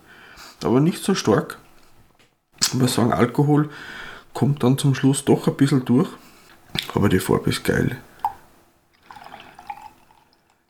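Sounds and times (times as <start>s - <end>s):
speech: 0.6s - 1.6s, 2.7s - 6.2s, 6.9s - 8.1s
beer fizzing and foaming in a glass during a beer tasting: 8.2s - 10.6s.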